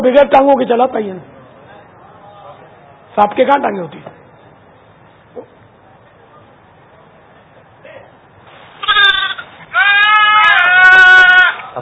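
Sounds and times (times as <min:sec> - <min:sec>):
speech: 0:00.0 - 0:01.4, 0:03.2 - 0:04.2
goat walking on two legs bleating: 0:08.8 - 0:11.7.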